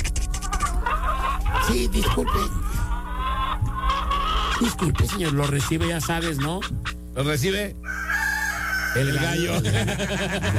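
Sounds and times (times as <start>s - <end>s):
rooster crowing: 0.6s - 4.9s, 7.8s - 9.6s
laughter: 0.8s - 6.6s, 9.2s - 10.5s
speech: 1.7s - 2.6s, 4.6s - 7.9s, 8.9s - 10.5s.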